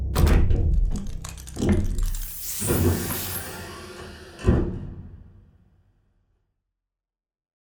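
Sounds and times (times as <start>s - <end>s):
heavy mechanical door clanking and thudding open: 0.2s - 5.6s.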